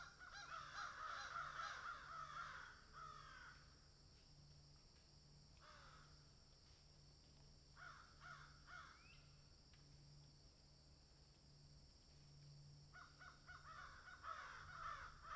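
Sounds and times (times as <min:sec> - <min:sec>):
several crows cawing in a field: 0:00.0 - 0:03.8, 0:05.6 - 0:06.2, 0:07.8 - 0:09.1, 0:12.9 - 0:15.3.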